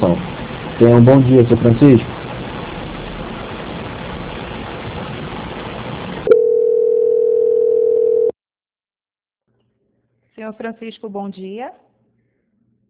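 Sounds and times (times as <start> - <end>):
speech: 0.8 - 2.2, 10.6 - 11.9
telephone line tone while a call is transferred: 6.3 - 8.4.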